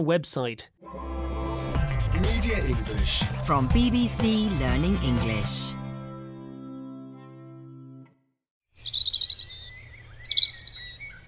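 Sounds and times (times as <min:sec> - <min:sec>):
speech: 0:00.0 - 0:01.1, 0:02.2 - 0:05.8
sustained musical tone: 0:00.8 - 0:08.1
robin singing: 0:08.7 - 0:11.2.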